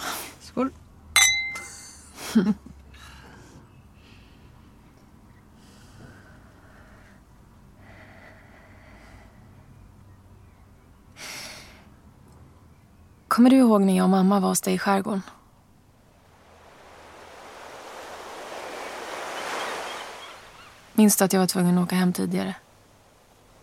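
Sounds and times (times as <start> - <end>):
speech: 0.6 - 0.8, 2.3 - 2.8, 13.4 - 15.4, 21.0 - 22.6
wine glasses clinking in a toast: 1.2 - 1.8
quiet breaths: 2.1 - 12.0.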